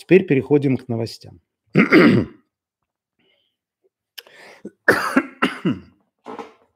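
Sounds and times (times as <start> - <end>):
speech: 0.0 - 2.4, 4.6 - 5.9
loud sharp coughing: 1.7 - 2.5, 4.7 - 6.0
throat clearing: 1.7 - 2.5, 4.8 - 6.0.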